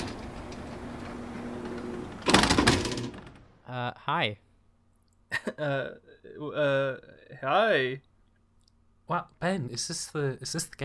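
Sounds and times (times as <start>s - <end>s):
building's front sliding doors whooshing open: 0.0s - 3.1s
steady hum: 0.0s - 10.8s
speech: 3.7s - 4.4s, 5.4s - 8.1s, 9.1s - 10.8s.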